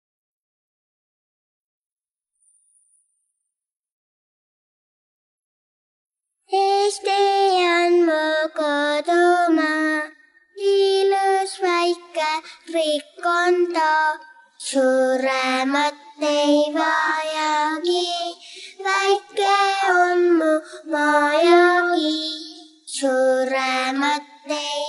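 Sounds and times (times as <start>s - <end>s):
vocals: 6.5s - 24.8s.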